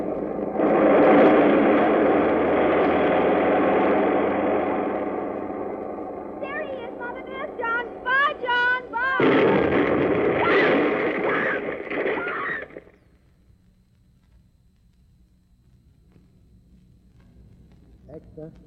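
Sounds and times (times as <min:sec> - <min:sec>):
loud bomb blast: 0:00.0 - 0:13.0
faint low hum: 0:00.0 - 0:18.6.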